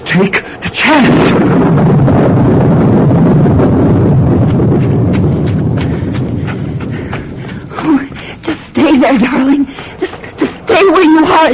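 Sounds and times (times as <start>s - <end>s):
loud continuous wind-like rumble: 0.0s - 11.5s
speech: 0.2s - 1.8s
horse hooves clip-clopping: 4.5s - 8.6s.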